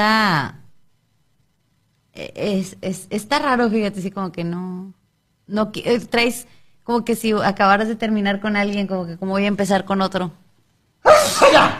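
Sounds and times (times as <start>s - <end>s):
speech: 0.0s - 0.6s, 2.2s - 10.4s, 11.0s - 11.7s
loud two-part sneeze: 11.0s - 11.7s.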